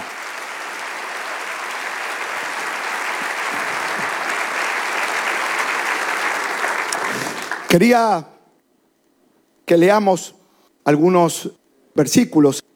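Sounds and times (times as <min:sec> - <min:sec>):
audience applause: 0:00.0 - 0:07.8
speech: 0:07.7 - 0:08.3, 0:09.7 - 0:12.7.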